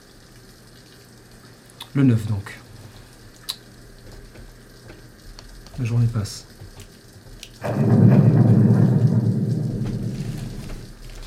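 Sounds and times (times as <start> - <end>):
heavy rain pouring: 0.0 - 11.2
speech: 2.0 - 2.6, 5.8 - 6.5, 7.6 - 8.0
deep rumbling undertone: 7.6 - 11.2.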